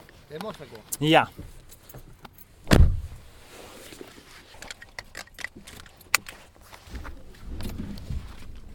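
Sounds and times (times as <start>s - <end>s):
speech: 0.3s - 2.0s
heavy door of an old car thudding shut: 2.6s - 3.2s
clicks and rattles: 4.6s - 6.4s.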